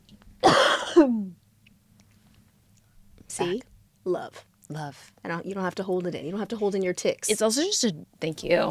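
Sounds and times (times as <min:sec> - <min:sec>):
harsh broadband cough: 0:00.4 - 0:01.3
rasping voiced throat clearing with a falling grunt: 0:00.4 - 0:01.4
speech: 0:01.0 - 0:01.3, 0:03.4 - 0:08.7.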